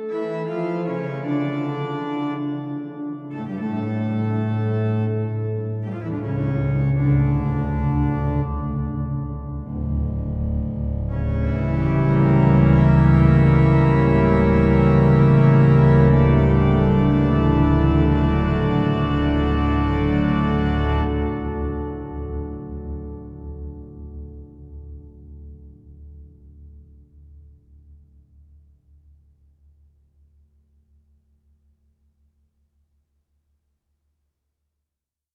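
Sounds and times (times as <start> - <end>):
Sony DRE 2000 organ: 0.3 - 26.2.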